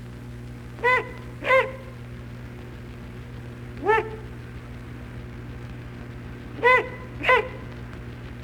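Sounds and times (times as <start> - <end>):
steady low hum: 0.0 - 8.4
adult great horned owl bark-like alarm hoots: 0.8 - 2.0, 3.8 - 4.4, 6.6 - 7.8.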